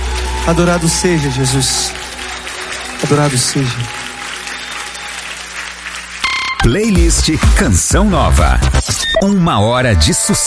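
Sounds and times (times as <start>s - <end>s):
faint cheering: 0.0s - 5.8s
crowd applauding: 0.0s - 8.8s
speech: 0.5s - 2.0s, 3.0s - 4.0s, 6.6s - 10.4s.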